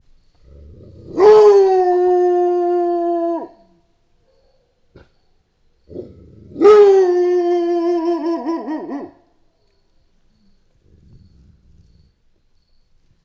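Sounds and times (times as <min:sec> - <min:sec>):
grey wolf howling in Hortobágy National Park: 0:00.5 - 0:03.7, 0:06.0 - 0:09.2.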